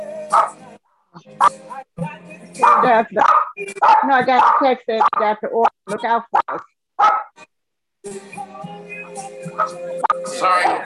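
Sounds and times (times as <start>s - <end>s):
dogs barking: 0.3s - 0.6s, 1.4s - 1.6s, 2.6s - 7.4s, 9.5s - 10.8s
speech: 1.4s - 7.2s, 8.0s - 10.8s.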